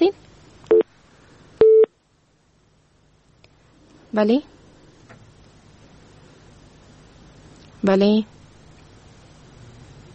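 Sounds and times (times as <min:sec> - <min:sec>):
telephone busy signal beeps after a cut-off call: 0:01.6 - 0:01.9
speech: 0:04.1 - 0:04.6, 0:07.8 - 0:08.4.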